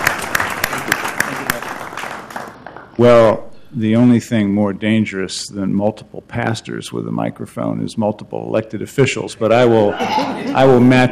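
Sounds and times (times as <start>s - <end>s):
audience applause: 0.0s - 2.6s
low noise: 0.0s - 11.1s
speech: 3.0s - 11.1s
laughter: 9.8s - 11.1s.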